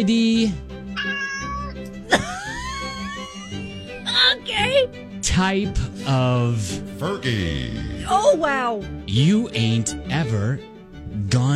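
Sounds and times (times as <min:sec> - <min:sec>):
speech: 0:00.0 - 0:01.2, 0:02.1 - 0:02.4, 0:04.4 - 0:10.7, 0:11.3 - 0:11.5
cat meowing and yowling: 0:00.9 - 0:01.9
laughter: 0:02.1 - 0:04.4.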